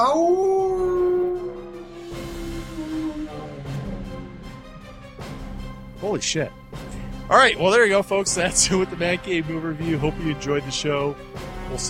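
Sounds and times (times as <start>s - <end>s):
person howling like a wolf: 0.0s - 4.9s
speech: 6.1s - 6.6s, 7.3s - 11.8s.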